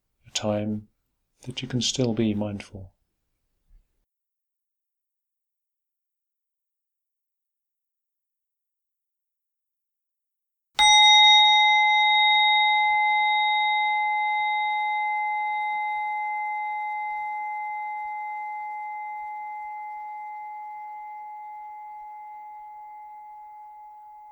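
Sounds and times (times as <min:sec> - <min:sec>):
speech: 0:00.4 - 0:03.0
meditation bell struck and ringing: 0:10.8 - 0:24.3.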